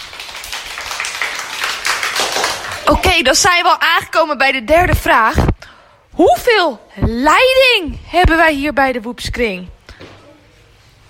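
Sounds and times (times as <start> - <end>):
group clapping in sustained applause: 0.0 - 3.1
speech: 2.9 - 5.5, 6.2 - 9.8.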